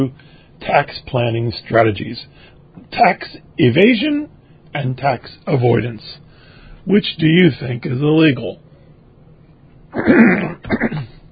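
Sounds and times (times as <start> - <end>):
speech: 0.0 - 6.2, 6.8 - 8.6, 10.0 - 11.1
person giving a slide lecture coughing hoarsely: 10.0 - 11.3.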